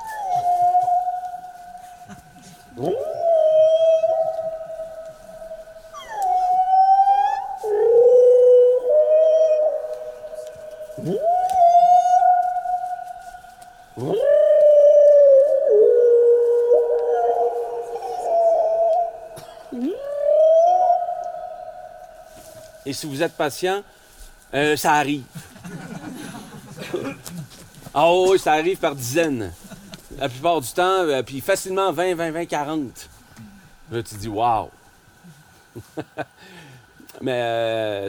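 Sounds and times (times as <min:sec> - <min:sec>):
baleinophone whale-calling instrument sounding long sliding moans and whoops: 0:00.0 - 0:22.8
faint steady hum: 0:00.0 - 0:38.0
speech: 0:02.8 - 0:03.1, 0:23.0 - 0:25.4, 0:28.0 - 0:29.6, 0:30.2 - 0:33.1, 0:33.9 - 0:34.8, 0:37.2 - 0:38.0
laughter: 0:25.3 - 0:27.6.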